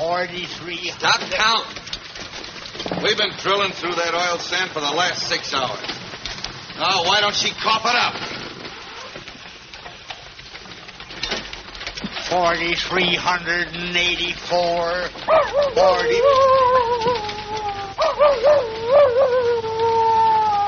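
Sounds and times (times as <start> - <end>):
steady low hum: 0.0 - 20.6
speech: 0.1 - 2.0, 3.0 - 6.0, 6.8 - 8.4, 12.3 - 17.1, 18.2 - 19.6
coyote howling in wavering, sliding tonal calls: 15.3 - 20.6.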